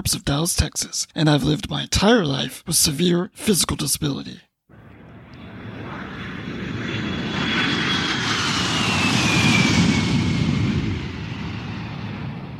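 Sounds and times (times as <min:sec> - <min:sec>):
speech: 0:00.0 - 0:04.5
airplane passing overhead with roaring engine rumble and descending whine: 0:04.7 - 0:12.5.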